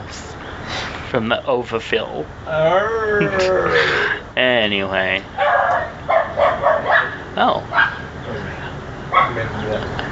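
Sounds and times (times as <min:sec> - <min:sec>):
speech: 0:01.1 - 0:05.9, 0:07.4 - 0:07.8
dog barking excitedly: 0:05.4 - 0:08.1, 0:09.1 - 0:09.6
dog yips: 0:05.4 - 0:08.1.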